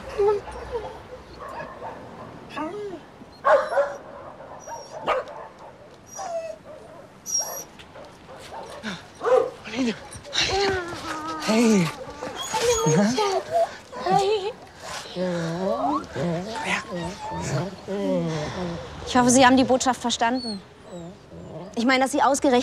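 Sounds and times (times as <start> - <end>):
dogs whimpering in a kennel: 0.0 - 1.8, 2.5 - 4.0, 4.6 - 5.3, 5.9 - 7.8, 8.6 - 18.8, 19.8 - 22.1
many dogs barking and yipping in a kennel: 0.0 - 15.2, 15.8 - 17.9
speech: 19.2 - 20.8, 21.8 - 22.6.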